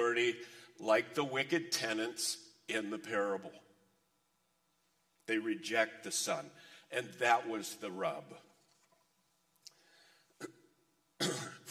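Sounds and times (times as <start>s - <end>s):
speech: 0.2s - 3.6s, 5.3s - 8.5s, 11.2s - 11.6s
person coughing from a cold: 10.4s - 11.6s.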